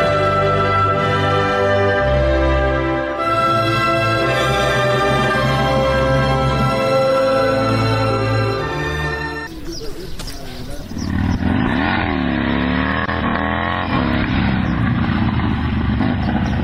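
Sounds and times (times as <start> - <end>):
motorcycle engine while the bike is being parked: 0.0 - 16.6.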